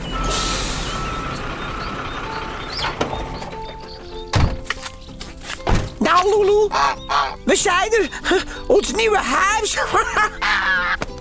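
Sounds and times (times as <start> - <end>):
moving truck air brakes hissing: 0.0 - 2.8
faint reversing beeps: 0.0 - 4.0
large moving truck engine rumble: 0.0 - 8.7
heavy thunk: 4.3 - 4.6, 5.6 - 6.0
speech: 6.2 - 10.6
laughter: 6.4 - 11.1.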